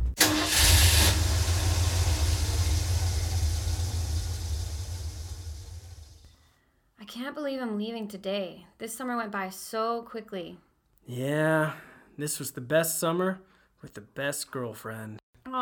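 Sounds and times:
car engine cranking and idling: 0.1s - 6.3s
speech: 7.2s - 15.6s.

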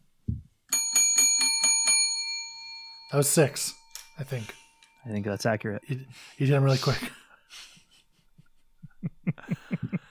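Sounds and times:
small bell being struck: 0.7s - 5.4s
speech: 3.1s - 7.7s
laughter: 5.9s - 10.0s.

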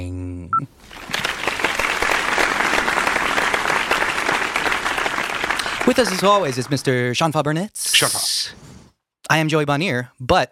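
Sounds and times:
sizable crowd applauding: 0.8s - 7.1s
speech: 5.9s - 8.6s, 9.3s - 10.4s.

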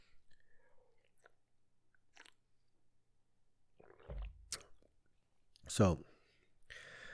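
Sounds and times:
person sipping water: 0.1s - 2.7s, 3.7s - 4.9s
gulp and swallow: 0.3s - 2.7s, 3.7s - 5.0s
speech: 5.7s - 6.1s.

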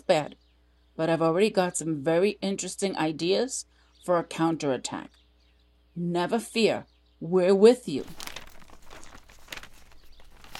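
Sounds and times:
speech: 0.1s - 0.4s, 1.0s - 5.2s, 6.0s - 8.2s
local newspaper pages rustling and crinkling: 7.9s - 10.5s
newspaper sheets crackling as they are handled: 8.0s - 10.5s.

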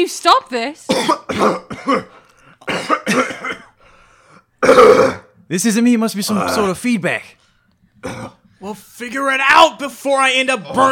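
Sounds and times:
speech: 0.0s - 2.2s, 4.6s - 7.4s, 8.0s - 10.9s
people coughing and choking: 0.9s - 3.8s, 4.6s - 5.4s, 8.0s - 8.5s.

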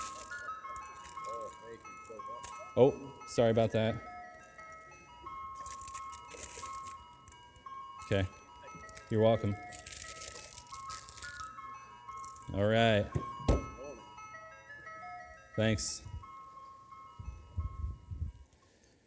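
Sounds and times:
rustling: 0.0s - 2.6s, 5.5s - 7.4s, 8.4s - 12.5s
ice cream truck tinkling music jingle: 0.0s - 19.0s
speech: 2.8s - 4.1s, 8.1s - 8.4s, 9.1s - 9.7s, 12.6s - 13.3s, 15.6s - 16.1s
clunks: 12.5s - 14.0s.

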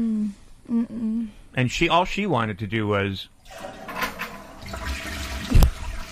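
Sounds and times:
speech: 0.7s - 3.8s
toilet flushing: 3.4s - 6.0s.

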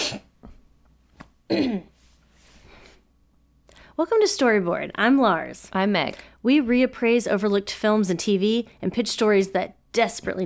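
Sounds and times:
person coughing: 0.0s - 0.3s, 1.5s - 2.0s
speech: 1.5s - 1.9s, 4.0s - 10.4s
person clearing their throat with a rough rasp: 1.5s - 2.0s.

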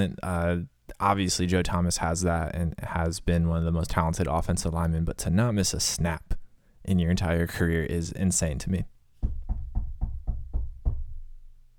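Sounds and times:
speech: 0.0s - 8.9s
knocking on wood: 9.2s - 11.6s.

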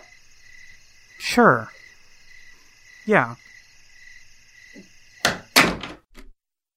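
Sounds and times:
cricket-like insects chirping: 0.0s - 6.1s
speech: 1.2s - 1.8s, 3.1s - 3.5s
house door thunk: 4.8s - 6.3s.

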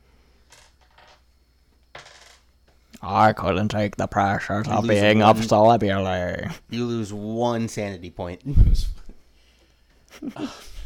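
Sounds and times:
small hard four-sided die rolling on a table: 0.5s - 1.3s, 1.9s - 2.5s
speech: 3.0s - 9.0s, 10.2s - 10.6s.

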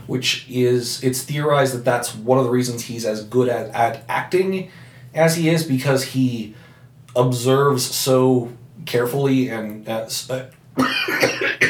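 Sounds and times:
speech: 0.1s - 11.4s
person coughing with throat-clearing: 10.8s - 11.6s.

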